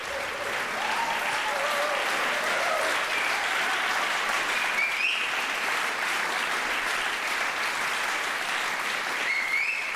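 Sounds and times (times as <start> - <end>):
faint whistles or cheers: 0.0 - 5.5, 9.1 - 9.9
large concert audience applauding in a reverberant hall: 0.0 - 9.9.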